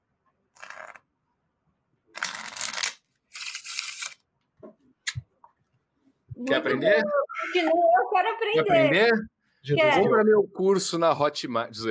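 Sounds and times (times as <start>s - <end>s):
deck of playing cards being shuffled: 0.6s - 1.0s, 2.2s - 4.2s
speech: 6.4s - 11.8s.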